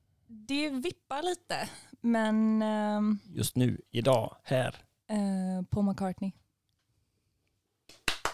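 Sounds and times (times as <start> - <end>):
speech: 0.3 - 6.4
hand claps: 7.9 - 8.3.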